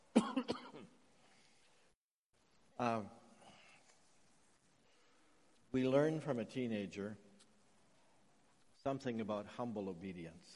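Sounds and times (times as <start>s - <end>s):
throat clearing from someone with a tickle in the throat: 0.1s - 0.9s
speech: 2.8s - 3.2s, 5.8s - 7.3s, 8.8s - 10.5s.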